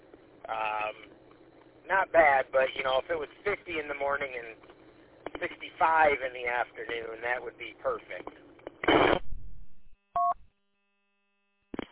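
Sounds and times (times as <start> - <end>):
two-way radio static hiss: 0.2 - 9.4, 11.7 - 11.9
speech: 0.5 - 1.1, 1.9 - 4.8, 5.4 - 9.2
two-way radio beep after unkeying the transmitter: 8.8 - 9.3.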